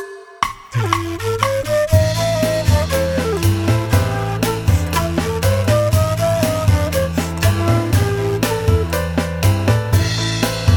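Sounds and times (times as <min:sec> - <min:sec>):
blues scale lick: 0:00.5 - 0:10.6.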